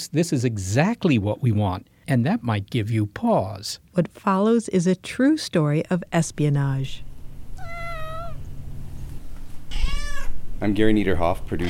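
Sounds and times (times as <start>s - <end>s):
speech: 0.0s - 7.1s, 10.6s - 11.6s
low indoor hum: 0.0s - 11.6s
cat meowing: 7.6s - 8.5s, 9.7s - 10.4s.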